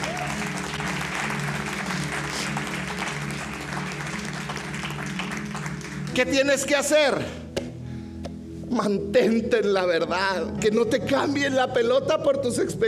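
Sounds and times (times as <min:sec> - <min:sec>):
large audience applauding: 0:00.0 - 0:06.5
speech: 0:06.2 - 0:07.4, 0:08.8 - 0:12.8.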